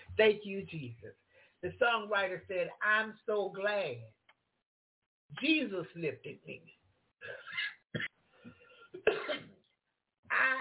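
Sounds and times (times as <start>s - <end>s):
speech: 0.2s - 4.2s, 5.3s - 8.1s
harsh cough with throaty rasp: 7.2s - 9.6s.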